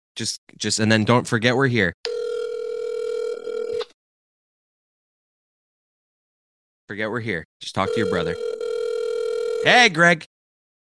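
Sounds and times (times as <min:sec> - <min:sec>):
speech: 0:00.2 - 0:02.2, 0:06.9 - 0:08.6, 0:09.6 - 0:10.3
phone ringback tone over a speakerphone: 0:02.1 - 0:03.9, 0:07.8 - 0:09.7.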